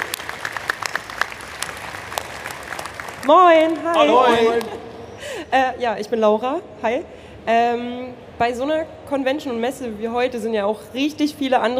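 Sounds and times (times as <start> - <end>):
audience at a convention and fan fair applauding: 0.0 - 4.8
speech: 3.2 - 4.8, 5.5 - 11.7.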